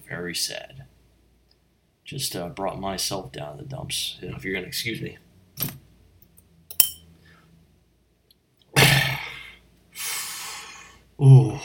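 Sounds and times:
speech: 0.2s - 0.8s, 2.1s - 5.8s
tall liquor glass clink: 6.7s - 7.1s
person exhaling and gasping after swallowing liquor: 8.8s - 11.6s.

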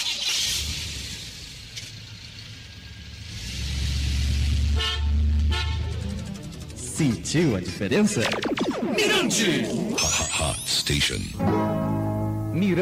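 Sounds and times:
car driving past with low engine rumble: 0.0s - 7.9s
car horn honking: 4.6s - 6.3s
speech: 7.0s - 11.8s, 12.6s - 12.8s.

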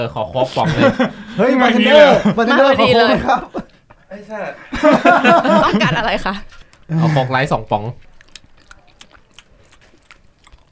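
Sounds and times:
speech: 0.0s - 8.1s
laughter: 0.4s - 7.4s
person biting close to microphone: 3.4s - 4.2s, 4.8s - 7.2s, 8.0s - 10.7s.

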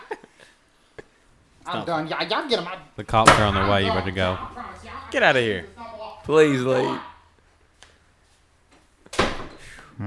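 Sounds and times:
speech: 1.7s - 7.1s
door closing with a bang: 3.2s - 5.8s.

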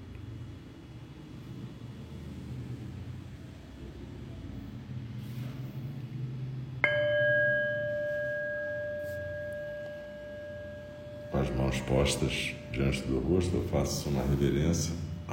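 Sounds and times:
meditation bell struck to end practice: 6.8s - 15.3s
speech: 11.4s - 15.0s.

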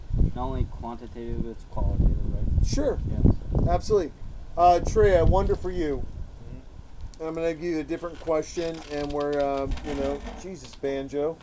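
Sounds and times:
speech: 0.4s - 6.2s, 7.2s - 11.4s
chair squeaking and creaking as a dog moves around on it: 7.9s - 11.4s.

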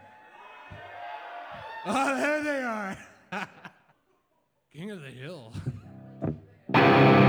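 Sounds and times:
crowd cheering and whooping: 0.0s - 2.2s
speech: 1.8s - 3.6s, 4.8s - 7.1s
laughter: 1.8s - 4.0s.

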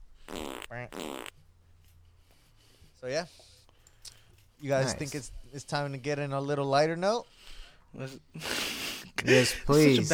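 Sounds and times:
fart sound effect: 0.3s - 1.4s
speech: 3.0s - 3.5s, 4.6s - 10.1s.

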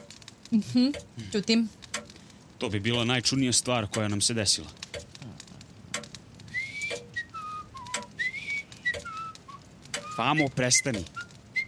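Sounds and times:
sharp clicks: 0.0s - 3.0s, 3.8s - 11.6s
speech: 0.5s - 1.8s, 2.6s - 4.8s, 10.2s - 11.2s
bird in a cuckoo wall clock whistling: 6.5s - 11.6s.

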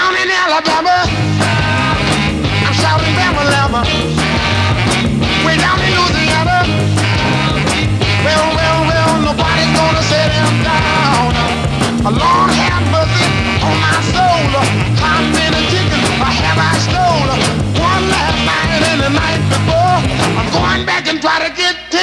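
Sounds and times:
upbeat soul song with lead vocal, drums and horns: 0.2s - 22.0s.

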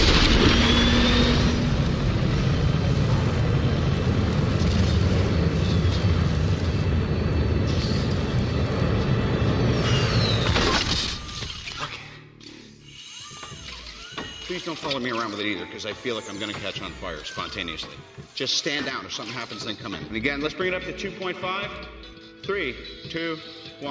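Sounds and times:
jet thrusters firing at low thrust: 0.0s - 10.6s
speech: 14.8s - 23.8s.

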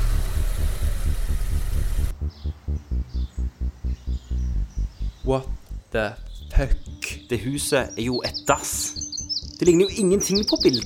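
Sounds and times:
car engine running as the car drives off: 0.0s - 4.0s
speech: 5.3s - 9.0s, 9.6s - 10.8s.

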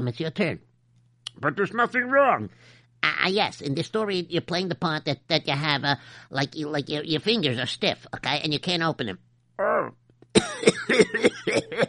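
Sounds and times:
speech: 0.0s - 0.7s, 1.4s - 11.8s
low steady hum: 0.0s - 11.8s
short harsh coughs: 10.3s - 11.8s.

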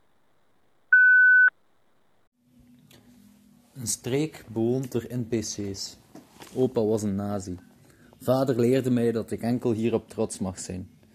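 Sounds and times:
voicemail beep: 0.9s - 1.5s
speech: 3.8s - 11.0s.

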